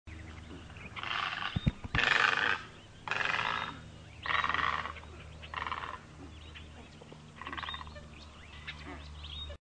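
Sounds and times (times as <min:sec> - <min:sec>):
steady low hum: 0:00.1 - 0:09.6
great egret giving harsh rasping croaks: 0:01.0 - 0:06.3.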